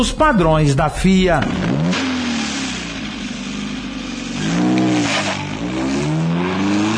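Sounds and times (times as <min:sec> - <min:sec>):
speech: 0:00.0 - 0:01.7
racing engines revving hard: 0:01.4 - 0:06.9.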